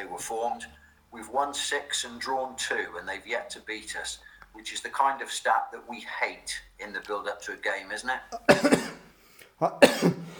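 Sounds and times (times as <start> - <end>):
speech: 0.2 - 9.0, 9.6 - 10.3
short rough cough: 8.4 - 9.1, 9.8 - 10.3.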